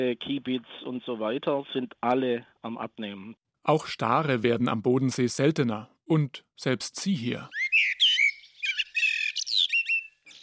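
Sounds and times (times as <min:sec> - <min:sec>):
speech: 0:00.0 - 0:08.0
bird singing: 0:07.2 - 0:10.4.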